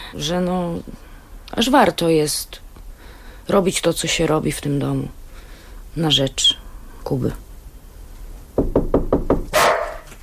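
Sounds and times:
speech: 0.1s - 2.6s, 3.5s - 5.2s, 6.0s - 7.4s
dog barking in a home: 9.5s - 10.2s.

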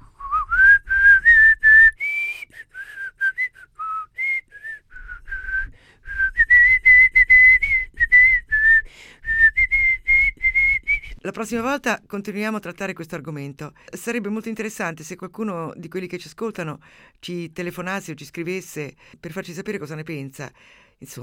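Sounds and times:
person whistling an anthem melody: 0.0s - 11.2s
speech: 11.4s - 21.2s.

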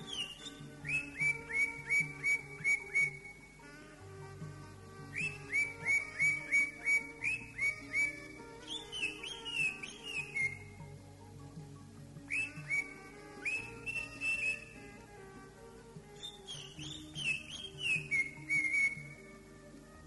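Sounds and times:
greater green leafbird whistled song: 0.0s - 3.8s, 5.0s - 10.8s, 12.3s - 14.9s, 16.1s - 19.3s.

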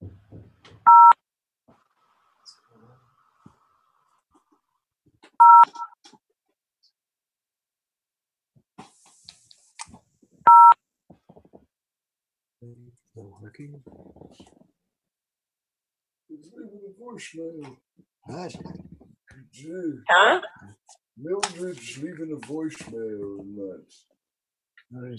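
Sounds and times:
telephone keypad tones: 0.9s - 1.2s, 5.4s - 5.9s, 10.5s - 10.8s
speech: 13.4s - 14.7s, 16.4s - 18.8s, 19.6s - 20.5s, 21.2s - 24.1s, 24.9s - 25.1s.

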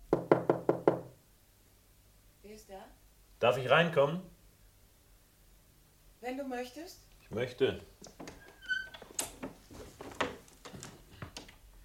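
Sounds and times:
knocking on a door along a corridor: 0.1s - 1.2s
speech: 2.6s - 4.4s, 6.2s - 8.3s.

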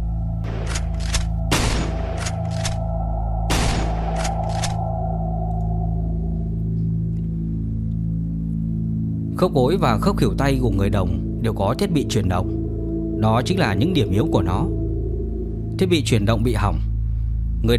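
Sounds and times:
steady low hum: 0.0s - 17.7s
heavy booming gunshots: 0.4s - 2.5s, 3.5s - 4.4s
repeated gunshots fired at joints of a bronze automaton: 0.4s - 2.8s, 3.5s - 4.8s
speech: 9.4s - 12.6s, 13.2s - 14.8s, 15.8s - 16.9s.

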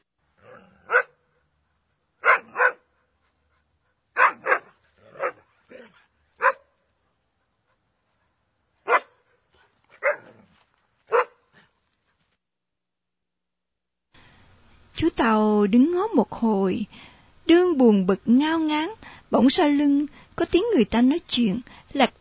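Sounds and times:
black dog barking: 0.5s - 1.2s, 2.2s - 3.0s, 4.1s - 6.8s, 8.8s - 10.5s, 11.1s - 11.5s
speech: 15.2s - 22.1s.

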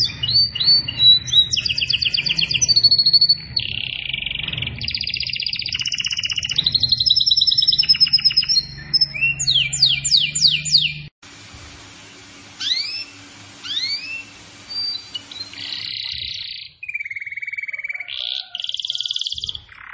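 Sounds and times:
canary in vigorous continuous song with trills and whistled phrases: 0.0s - 11.1s, 12.4s - 19.9s
hiss: 11.2s - 15.8s.

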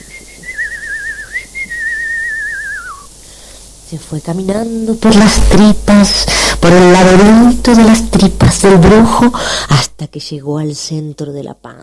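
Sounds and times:
person whistling a high sustained tune with warbling trills: 0.0s - 3.1s
speech: 3.9s - 11.8s.

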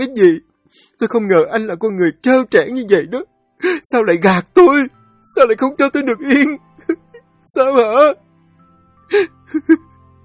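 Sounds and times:
speech: 0.0s - 8.2s, 9.1s - 9.9s
woman sobbing too hard to speak: 5.6s - 8.2s, 9.1s - 9.9s.

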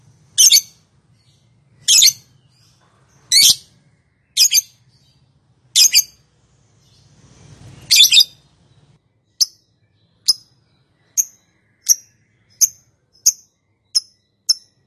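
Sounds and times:
lovebird sharp high chirps: 1.8s - 2.6s, 4.3s - 4.8s, 5.8s - 6.2s, 7.8s - 8.5s, 9.3s - 14.8s.

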